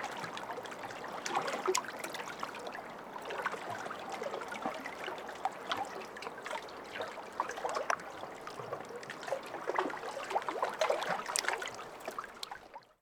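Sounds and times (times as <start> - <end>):
lake waves: 0.0 - 12.6.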